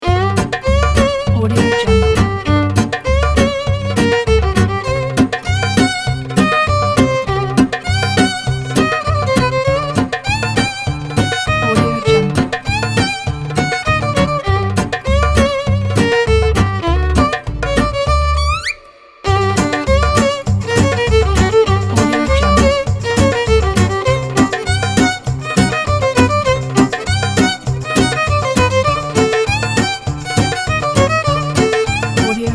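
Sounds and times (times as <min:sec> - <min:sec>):
Jewish violin: 0:00.0 - 0:32.5.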